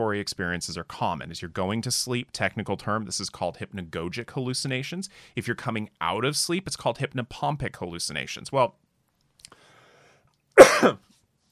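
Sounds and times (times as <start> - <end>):
speech: 0.0 - 8.8, 10.8 - 11.1
person coughing: 10.6 - 11.0.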